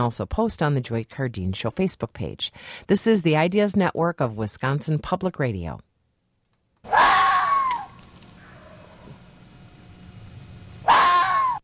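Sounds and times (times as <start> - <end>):
speech: 0.0 - 5.9
vixen screaming: 6.9 - 9.0, 10.8 - 11.6.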